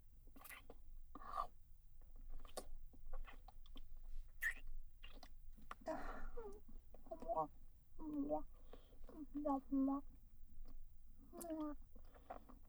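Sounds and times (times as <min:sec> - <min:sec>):
wet ear licking sounds deep in the ear: 0:00.3 - 0:01.5, 0:02.2 - 0:10.0, 0:10.6 - 0:12.6.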